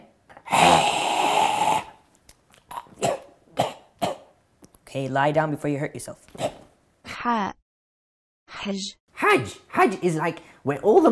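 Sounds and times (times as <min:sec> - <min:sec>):
voice imitating breathing fire with a forceful roaring exhale: 0:00.5 - 0:02.0
speech: 0:04.9 - 0:06.3, 0:07.2 - 0:07.5, 0:08.6 - 0:11.1.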